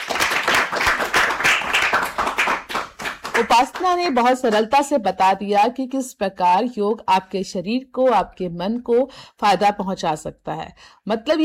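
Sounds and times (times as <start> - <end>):
group of children clapping in steady applause: 0.0 - 4.6
speech: 3.4 - 11.4.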